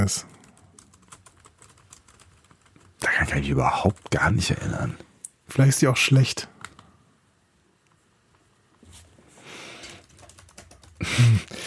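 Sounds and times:
speech: 0:00.0 - 0:00.4, 0:03.2 - 0:06.5
typing on a computer keyboard: 0:00.0 - 0:03.0, 0:09.9 - 0:11.1.

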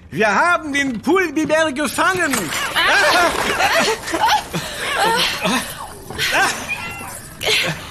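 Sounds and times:
speech: 0:00.1 - 0:06.7, 0:07.4 - 0:07.8
laughter: 0:02.5 - 0:07.8
several cats yowling and wailing: 0:05.0 - 0:07.5.

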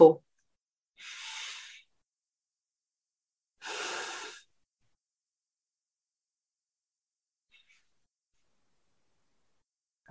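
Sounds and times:
long deep breaths drawn in through the nose: 0:01.0 - 0:01.9, 0:03.6 - 0:04.5.

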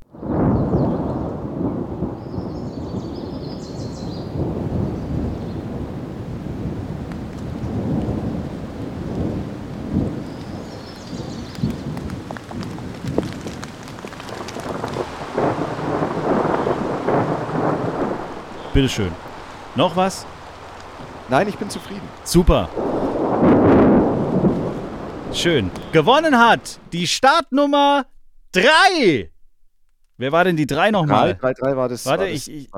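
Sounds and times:
steady loud rain: 0:00.0 - 0:27.9
deep rolling thunder: 0:00.1 - 0:27.0
gusts of wind buffeting the microphone: 0:00.1 - 0:27.0
speech: 0:18.8 - 0:19.2, 0:19.8 - 0:20.3, 0:21.3 - 0:23.8, 0:25.4 - 0:29.3, 0:30.2 - 0:32.7.

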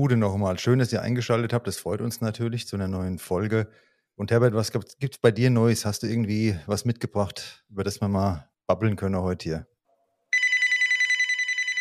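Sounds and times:
speech: 0:00.0 - 0:09.7
telephone bell ringing for an incoming call: 0:10.3 - 0:11.8.

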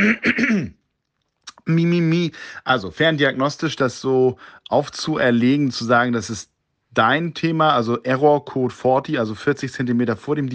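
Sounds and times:
man clearing throat: 0:00.0 - 0:00.8
speech: 0:00.0 - 0:00.8, 0:01.7 - 0:10.5.

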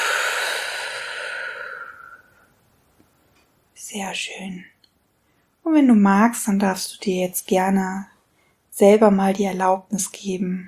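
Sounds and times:
slow long exhale after holding the breath: 0:00.0 - 0:02.5
speech: 0:03.9 - 0:04.8, 0:05.6 - 0:08.1, 0:08.8 - 0:10.6.

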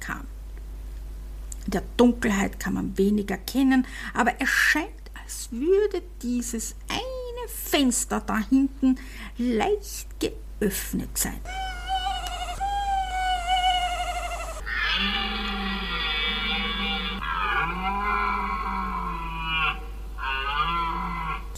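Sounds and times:
speech: 0:01.7 - 0:11.6
tawny owls calling: 0:11.5 - 0:18.5
deer bellowing: 0:11.5 - 0:21.5
elephant calling: 0:11.5 - 0:21.5.

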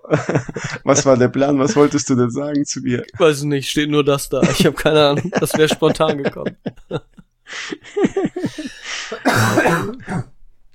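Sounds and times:
laughter: 0:00.0 - 0:02.1, 0:04.3 - 0:09.3
speech: 0:00.1 - 0:10.3
person coughing: 0:09.1 - 0:10.7
throat clearing: 0:09.3 - 0:10.7.

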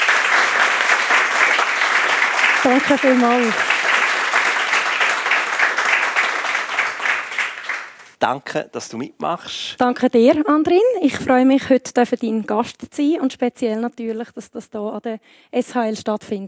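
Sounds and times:
audience applauding: 0:00.0 - 0:08.2
speech: 0:02.6 - 0:03.7, 0:08.2 - 0:16.4.

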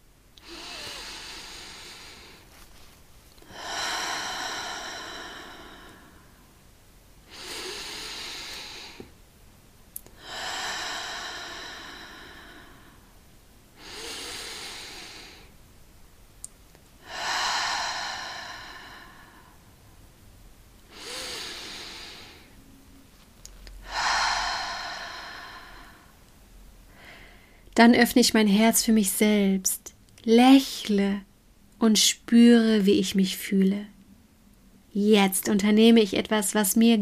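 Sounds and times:
slow deep breaths in and out: 0:00.4 - 0:06.6, 0:07.3 - 0:09.1, 0:10.0 - 0:15.6, 0:17.0 - 0:19.9, 0:20.9 - 0:22.6, 0:23.8 - 0:26.2, 0:26.9 - 0:27.7
speech: 0:27.8 - 0:33.9, 0:35.0 - 0:36.9.

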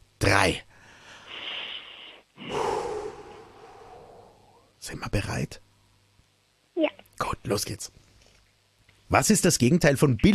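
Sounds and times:
speech: 0:00.2 - 0:00.7, 0:04.8 - 0:05.6, 0:07.2 - 0:08.0, 0:09.1 - 0:10.3
two people taking a deep breath together: 0:00.8 - 0:04.7.

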